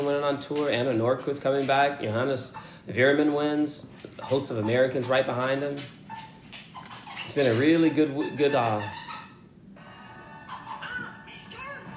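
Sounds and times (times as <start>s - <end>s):
low steady room hum: 0.0s - 11.9s
speech: 0.1s - 6.0s, 7.4s - 9.0s
dogs whining and yelping: 4.1s - 11.9s.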